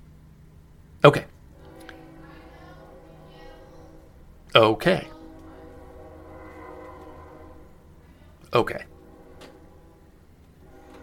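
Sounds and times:
speech: 0:01.0 - 0:01.3, 0:04.6 - 0:05.1, 0:08.6 - 0:08.9
train horn blaring in a long steady tone: 0:01.1 - 0:11.0.

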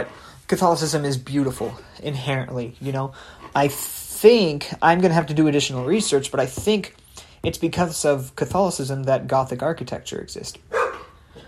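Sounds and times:
speech: 0:00.0 - 0:10.8
dog barking: 0:10.7 - 0:11.2.

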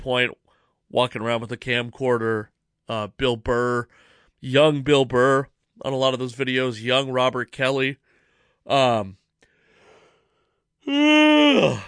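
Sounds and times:
speech: 0:00.0 - 0:08.0, 0:08.7 - 0:09.2, 0:10.9 - 0:11.8
person yawning: 0:10.8 - 0:11.8.

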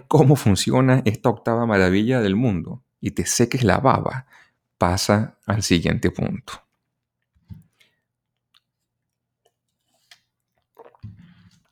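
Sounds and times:
speech: 0:00.0 - 0:06.6
person gulping water: 0:07.2 - 0:11.7.

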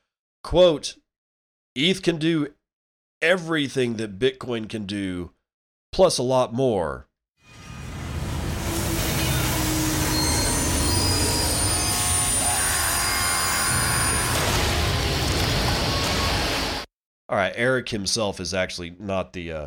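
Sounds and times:
speech: 0:00.5 - 0:01.0, 0:01.8 - 0:02.6, 0:03.2 - 0:05.4, 0:06.0 - 0:07.6, 0:17.3 - 0:19.6
heavy rumbling roar of a train: 0:07.7 - 0:16.8
train wheels squealing and grinding against rails: 0:08.6 - 0:14.5.

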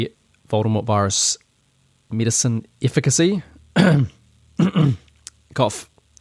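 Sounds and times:
speech: 0:00.0 - 0:01.4, 0:02.1 - 0:05.9
voice imitating coughing: 0:03.8 - 0:05.1.

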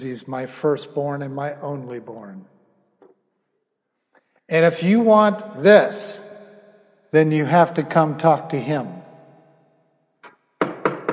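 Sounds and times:
speech: 0:00.0 - 0:02.5, 0:04.5 - 0:06.4, 0:07.1 - 0:09.0
knocking on a wooden door: 0:10.6 - 0:11.1.

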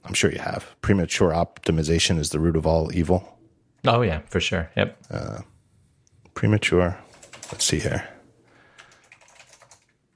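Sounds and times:
speech: 0:00.1 - 0:05.5, 0:06.4 - 0:08.1
typing on a mechanical Apple Extended Keyboard: 0:07.1 - 0:08.0, 0:08.8 - 0:10.0.

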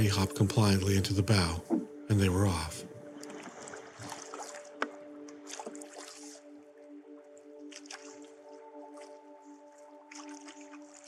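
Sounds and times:
speech: 0:00.0 - 0:02.9
water splashing and dripping from a canoe paddle: 0:01.4 - 0:11.0
paddle moving a 12-foot canoe through river water: 0:02.8 - 0:11.0.

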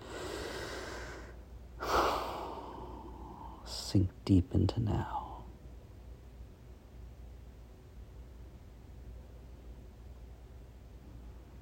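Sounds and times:
deep breath during a guided relaxation session: 0:00.0 - 0:03.7
speech: 0:03.9 - 0:05.2.

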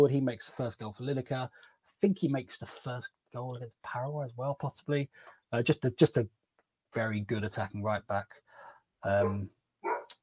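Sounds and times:
speech: 0:00.0 - 0:08.4, 0:09.0 - 0:10.2
dog barking: 0:09.2 - 0:10.2.

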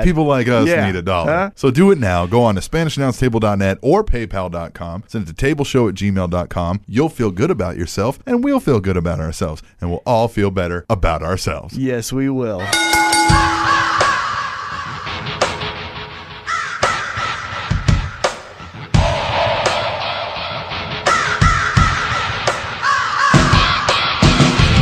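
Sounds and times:
speech: 0:00.0 - 0:13.6
driving instrumental theme music: 0:12.7 - 0:24.8
loud harsh raven caws: 0:13.8 - 0:15.4, 0:16.2 - 0:24.3.

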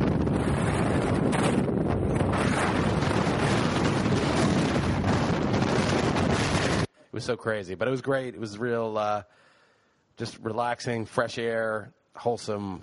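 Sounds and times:
strong freezing gusting wind on a hillside buffeting the microphone: 0:00.0 - 0:06.9
speech: 0:07.2 - 0:09.5, 0:10.2 - 0:12.8.

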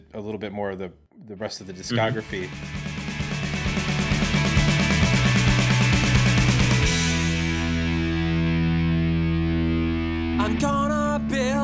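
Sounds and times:
speech: 0:00.1 - 0:02.9
thick distorted electric guitar: 0:02.2 - 0:11.6
rapid pounding rock drums: 0:02.3 - 0:09.2.

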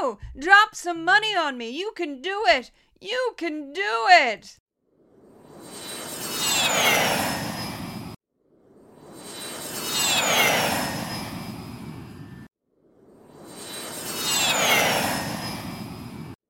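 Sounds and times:
speech: 0:00.1 - 0:04.6, 0:06.6 - 0:07.2
jet aircraft flying overhead: 0:05.1 - 0:12.5, 0:13.1 - 0:16.4.

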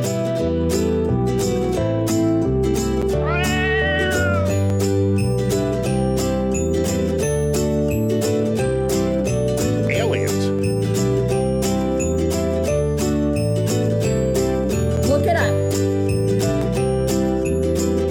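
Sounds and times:
loud steady beat-driven instrumental music: 0:00.0 - 0:18.0
drawn-out wavering cat meow: 0:03.2 - 0:04.8.

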